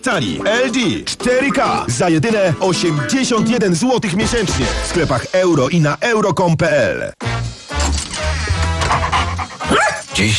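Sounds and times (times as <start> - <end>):
speech: 0.0 - 8.0, 9.7 - 10.3
dog barking and yipping: 8.8 - 10.1.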